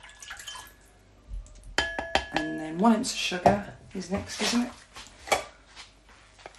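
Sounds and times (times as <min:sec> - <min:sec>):
orange juice poured into brandy: 0:00.0 - 0:01.8
speech: 0:02.3 - 0:04.8.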